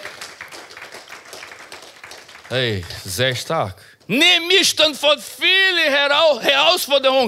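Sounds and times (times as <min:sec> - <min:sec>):
audience applause: 0:00.0 - 0:04.1
speech: 0:02.5 - 0:07.2.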